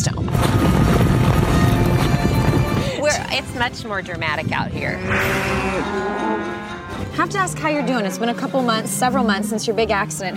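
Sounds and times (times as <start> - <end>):
gusty wind noise: 0.0 - 8.2
low rumbling: 0.0 - 10.3
hooves of cowboys' horses thudding while gathering cattle outdoors: 0.3 - 10.0
speech: 3.4 - 10.3.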